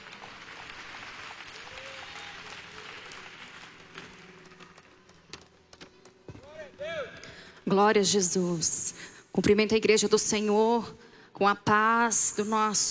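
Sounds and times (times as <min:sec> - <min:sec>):
audience applauding: 0:00.0 - 0:05.7
speech: 0:07.7 - 0:08.8, 0:09.4 - 0:12.9.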